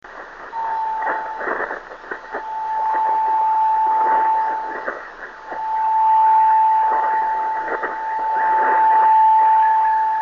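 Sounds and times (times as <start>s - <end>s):
driftnet beacon signals on 26530 kHz: 0.4s - 10.2s.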